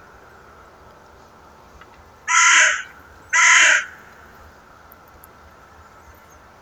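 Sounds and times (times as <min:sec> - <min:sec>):
Carrion crow Corvus corone giving harsh hoarse caws: 0:02.3 - 0:04.1.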